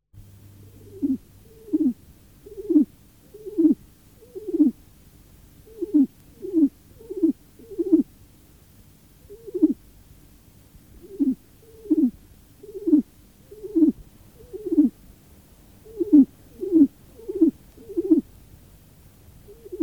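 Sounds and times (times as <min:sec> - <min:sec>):
pigeons: 0:00.7 - 0:04.8, 0:05.6 - 0:08.1, 0:09.2 - 0:09.8, 0:11.0 - 0:15.0, 0:15.8 - 0:18.3, 0:19.4 - 0:19.8.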